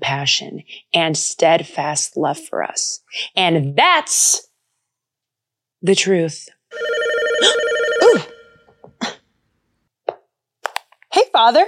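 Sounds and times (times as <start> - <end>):
speech: 0.0 - 4.5, 5.8 - 8.3, 11.4 - 11.6
telephone ringing with electronic tone: 6.7 - 8.8.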